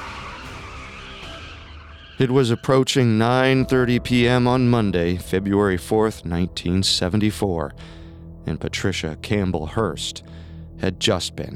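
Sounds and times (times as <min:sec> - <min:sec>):
car tires screeching as car peels away: 0:00.0 - 0:03.6
speech: 0:02.2 - 0:11.5.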